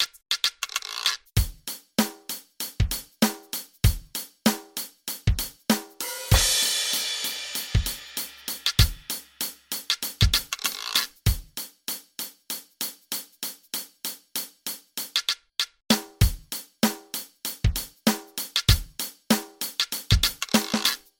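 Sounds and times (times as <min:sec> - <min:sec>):
electronic drum: 0:01.4 - 0:11.7, 0:15.0 - 0:21.1.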